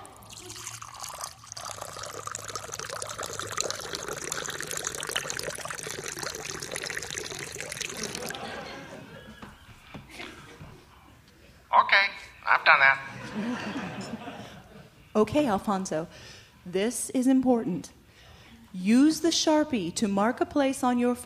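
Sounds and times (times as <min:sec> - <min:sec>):
faint whiskey drips: 0:00.0 - 0:08.5
cheap whiskey pouring from a bottle over a person's head: 0:00.0 - 0:08.6
laughter: 0:07.9 - 0:11.0, 0:13.1 - 0:15.0
speech: 0:15.2 - 0:18.0, 0:18.8 - 0:21.2.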